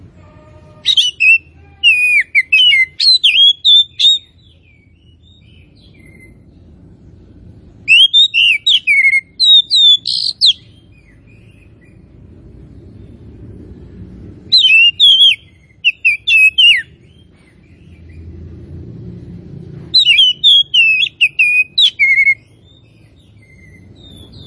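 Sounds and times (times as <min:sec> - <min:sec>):
faint low background hum: 0:00.0 - 0:24.4
Tretes oriental magpie-robin song: 0:00.8 - 0:06.6, 0:07.8 - 0:12.2, 0:14.5 - 0:18.4, 0:19.9 - 0:24.4.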